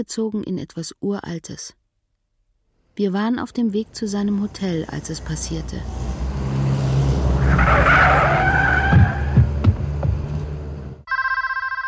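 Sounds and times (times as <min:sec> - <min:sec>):
speech: 0:00.0 - 0:01.8, 0:03.0 - 0:06.0, 0:07.7 - 0:08.2
engine noise: 0:03.5 - 0:11.0
tires skidding: 0:03.8 - 0:11.0
telephone ringing with a trilling electronic tone: 0:11.1 - 0:11.8.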